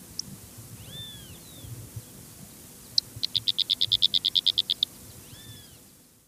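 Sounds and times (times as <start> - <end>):
Fork-tailed flycatcher Tyrannus savana ticking calls: 0.0 - 1.6, 2.8 - 5.8.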